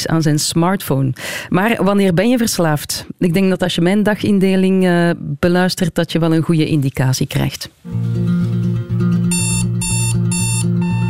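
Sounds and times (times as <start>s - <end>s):
speech: 0.0s - 8.6s
alarm clock shrill electronic beeping: 9.3s - 11.0s.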